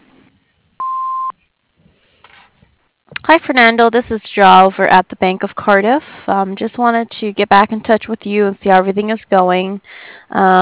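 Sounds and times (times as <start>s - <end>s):
answering machine electronic beep: 0.8s - 1.4s
speech: 3.3s - 10.5s.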